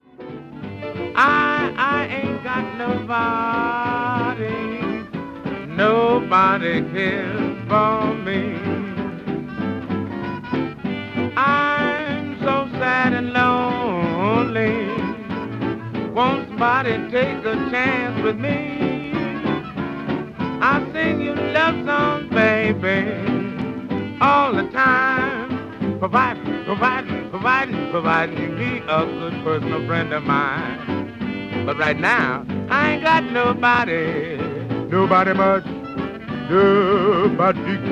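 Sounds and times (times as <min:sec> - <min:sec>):
person singing: 0:00.8 - 0:10.1, 0:10.9 - 0:37.9.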